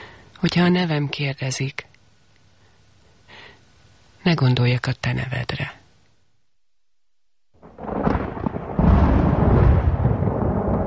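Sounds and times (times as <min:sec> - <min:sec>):
speech: 0:00.4 - 0:01.9, 0:04.2 - 0:05.8
loud thunder rumbling in a thunderstorm: 0:07.6 - 0:10.8.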